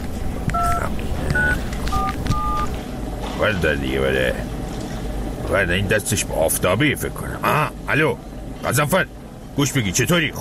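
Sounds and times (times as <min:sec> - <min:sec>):
noisy rumbling background: 0:00.0 - 0:10.3
phone keypad tones dialing a number: 0:00.5 - 0:02.8
speech: 0:03.4 - 0:04.6, 0:05.5 - 0:10.3.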